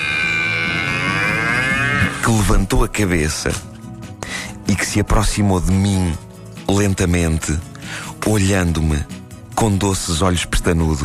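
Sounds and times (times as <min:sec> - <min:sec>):
cow mooing: 0:00.0 - 0:02.3
speech: 0:02.3 - 0:03.7, 0:04.7 - 0:07.7, 0:08.3 - 0:11.0.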